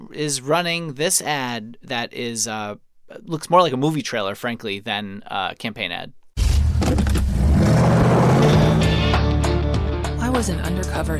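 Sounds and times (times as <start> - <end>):
speech: 0.1 - 6.2, 10.4 - 11.1
powerful Chevy Camaro engine revving in the desert: 6.4 - 9.3.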